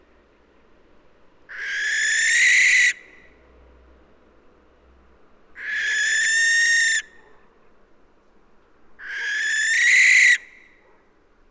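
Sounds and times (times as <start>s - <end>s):
Western barn owl Tyto alba screeching: 1.5s - 3.0s, 5.6s - 7.1s, 9.0s - 10.5s.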